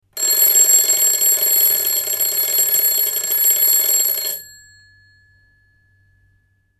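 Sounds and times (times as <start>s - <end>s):
old clock ringing short: 0.2s - 4.6s.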